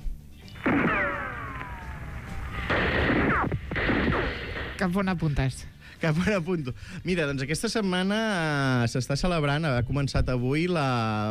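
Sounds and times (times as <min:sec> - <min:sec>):
whining descending ricochet-like tones: 0:00.5 - 0:04.9
gunshot sound effect blast: 0:00.6 - 0:05.1
speech: 0:04.8 - 0:11.2.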